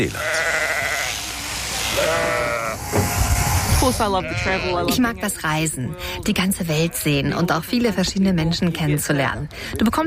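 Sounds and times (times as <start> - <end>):
speech: 0.0 - 0.3, 3.8 - 10.0
sheep bleating during shearing: 0.0 - 5.1.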